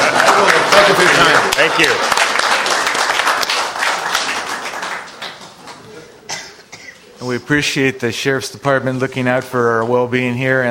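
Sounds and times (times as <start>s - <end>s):
audience applause: 0.0s - 5.9s
speech: 0.4s - 2.2s, 7.2s - 10.6s.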